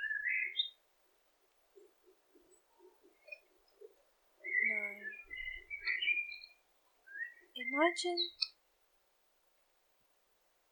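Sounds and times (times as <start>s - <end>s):
birds twittering in oaks, silver birches and weeping willows: 0.0s - 0.8s, 1.8s - 8.6s
speech: 7.8s - 8.4s.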